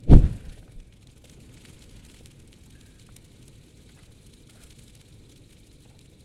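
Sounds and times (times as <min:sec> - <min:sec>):
fireball shooting: 0:00.0 - 0:00.8.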